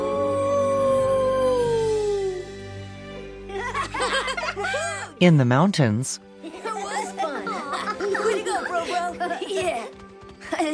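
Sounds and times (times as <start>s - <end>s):
wolf pups howling at night in snowy mountains beside a lake: 0.0s - 2.5s
laughter: 3.5s - 5.2s, 6.4s - 10.7s
speech: 5.2s - 6.3s, 9.1s - 10.7s.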